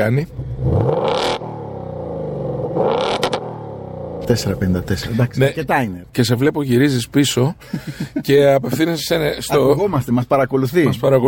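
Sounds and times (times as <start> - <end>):
speech: 0.0 - 0.7, 4.3 - 11.2
powerful car engine of nearly 500 horsepower revving: 0.0 - 5.6
laughter: 7.5 - 8.8.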